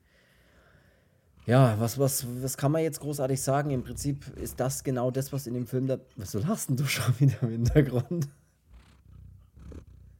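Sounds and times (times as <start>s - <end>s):
cat purring: 0.8s - 7.0s, 8.6s - 10.1s
speech: 1.5s - 8.4s.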